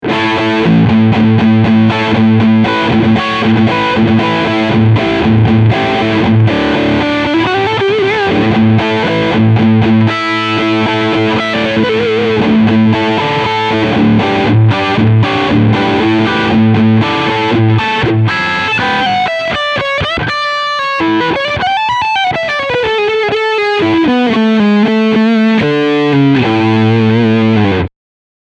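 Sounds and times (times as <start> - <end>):
guitar riff: 0.0 - 27.9.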